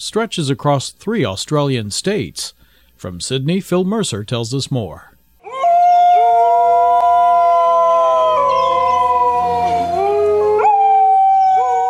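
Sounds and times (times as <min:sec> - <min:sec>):
speech: 0:00.0 - 0:05.2
several dingoes howling together: 0:05.4 - 0:11.8.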